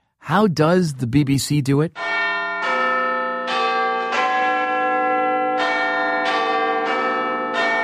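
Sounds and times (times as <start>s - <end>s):
speech: 0.3s - 2.1s
Big Ben clock tower bells chiming: 2.0s - 7.8s.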